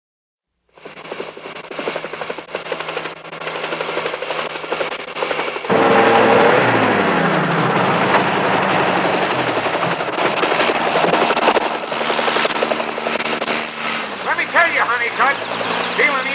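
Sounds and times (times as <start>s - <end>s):
helicopter rotor thumping: 0.7s - 16.3s
people's voices: 14.2s - 16.3s.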